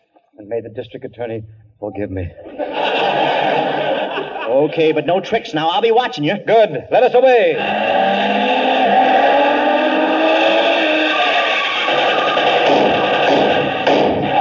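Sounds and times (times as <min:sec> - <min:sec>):
speech: 0:00.4 - 0:03.9, 0:04.5 - 0:08.4
laughter: 0:02.3 - 0:05.5, 0:07.2 - 0:13.9
engine roar of a car speeding along: 0:07.5 - 0:14.3.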